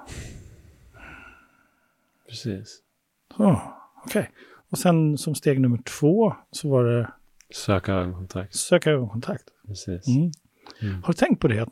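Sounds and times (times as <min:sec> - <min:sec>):
slow deliberate inhale through the nose: 0:00.0 - 0:02.0
speech: 0:02.3 - 0:11.7.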